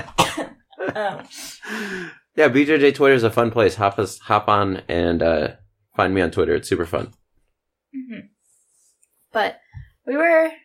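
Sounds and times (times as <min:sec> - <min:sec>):
person coughing after swallowing coffee wrong: 0:00.0 - 0:00.6
speech: 0:00.9 - 0:07.2, 0:09.3 - 0:10.6
breathy hiss of an exhale: 0:01.3 - 0:02.3.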